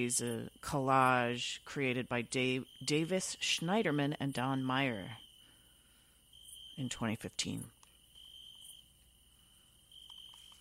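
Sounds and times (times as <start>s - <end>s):
speech: 0.0s - 5.2s, 6.8s - 7.8s
cricket trilling in Bulgaria: 0.0s - 10.6s
faint ticks: 10.0s - 10.6s.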